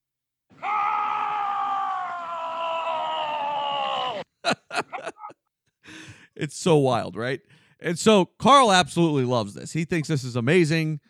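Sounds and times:
man screaming while skiing down a mountain: 0:00.6 - 0:04.3
laughter: 0:04.1 - 0:05.4
speech: 0:06.4 - 0:11.0.

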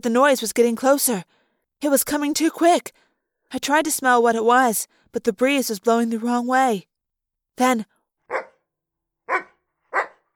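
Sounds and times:
speech: 0:00.0 - 0:06.9, 0:07.6 - 0:08.4
dog barking sharply: 0:08.3 - 0:08.7, 0:09.3 - 0:10.3.

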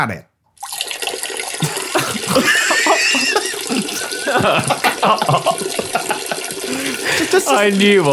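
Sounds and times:
scotch pouring into a very large glass: 0:00.6 - 0:08.1
people talking: 0:01.6 - 0:05.8, 0:07.0 - 0:08.1
people laughing: 0:01.6 - 0:08.1.

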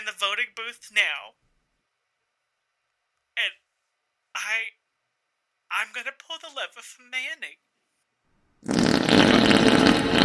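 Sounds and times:
speech: 0:00.0 - 0:01.5, 0:03.4 - 0:03.6, 0:04.4 - 0:04.8, 0:05.7 - 0:07.7
loud fart: 0:08.6 - 0:10.2.

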